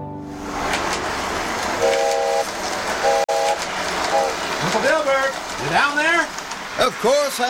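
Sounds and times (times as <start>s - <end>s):
model trains rumbling around tracks on a table in a basement: 0.4s - 7.4s
model train whistle toots: 1.8s - 4.4s
speech: 5.6s - 7.4s.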